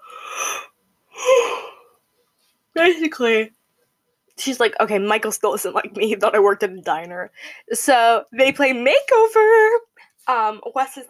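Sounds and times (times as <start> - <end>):
person yawning: 0.0 - 1.8
speech: 2.8 - 3.6, 4.4 - 11.0.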